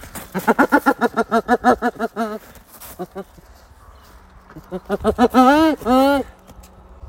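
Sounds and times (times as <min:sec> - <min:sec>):
hyena laughing: 0:00.3 - 0:03.5, 0:04.5 - 0:06.4.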